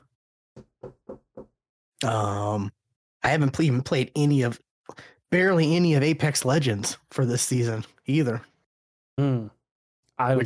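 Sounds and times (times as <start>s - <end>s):
knocking on wood: 0.6s - 1.6s
speech: 2.0s - 8.5s, 9.2s - 9.6s, 10.2s - 10.4s.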